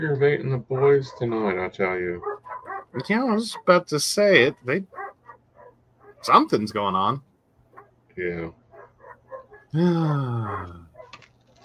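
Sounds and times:
speech: 0.0 - 5.0, 6.2 - 7.3, 8.2 - 8.6, 9.7 - 10.8
dog growling bark: 2.2 - 3.0, 4.9 - 6.3, 8.7 - 11.2.

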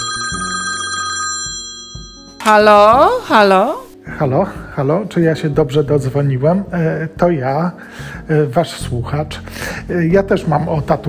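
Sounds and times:
telephone ringing with electronic tones: 0.0 - 4.0
speech: 2.4 - 11.0.

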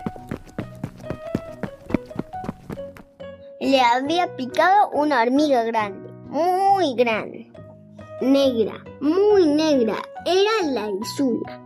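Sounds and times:
footsteps of a man running away after an ant sting: 0.0 - 3.2
speech: 3.6 - 7.4, 8.2 - 11.6.

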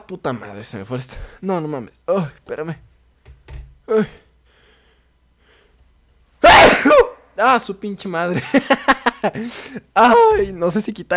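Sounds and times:
speech: 0.1 - 2.9, 3.9 - 4.2, 7.4 - 11.1
long loud breathy sneeze: 6.4 - 7.2.

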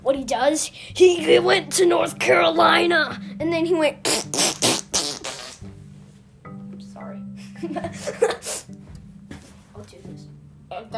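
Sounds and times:
speech: 0.1 - 4.8
breathy fart noises made by mouth: 4.0 - 5.8.

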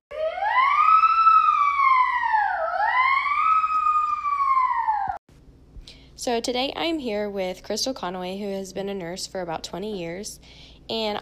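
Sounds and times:
ambulance siren wailing: 0.1 - 5.2
speech: 6.2 - 11.1.

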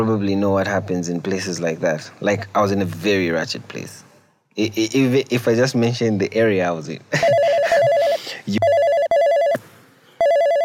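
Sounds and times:
speech: 0.0 - 4.0, 4.6 - 7.6
phone ringing with warbling electronic ringtone: 7.2 - 9.6, 10.2 - 10.6.

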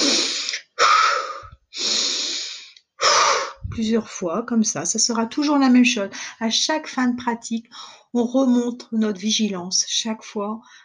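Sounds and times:
short brisk inhalations and exhalations in a relaxation breathing exercise: 0.0 - 3.7
speech: 3.8 - 10.8.

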